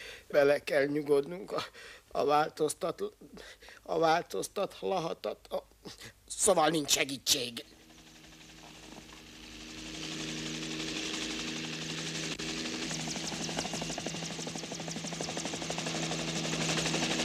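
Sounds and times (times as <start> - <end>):
speech: 0.3 - 7.8
helicopter flying overhead with rapid rotor chop: 7.6 - 17.2.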